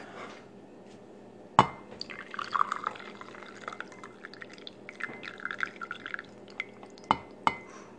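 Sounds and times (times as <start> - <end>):
coffee refill poured into a cup: 2.0 - 7.3.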